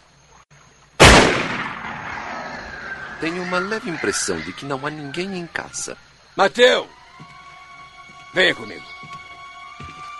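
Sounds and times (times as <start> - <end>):
gunshot fired at a boat: 1.0 - 2.8
speech: 3.2 - 7.3, 8.4 - 8.9.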